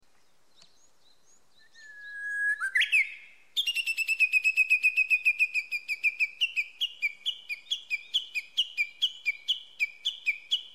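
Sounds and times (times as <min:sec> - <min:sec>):
Japanese bush warbler singing: 0:00.0 - 0:10.7.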